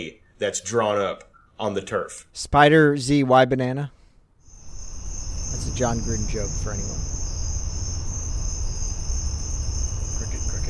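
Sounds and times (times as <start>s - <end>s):
speech: 0.0s - 4.0s, 5.5s - 7.1s
crickets chirping: 4.4s - 10.6s.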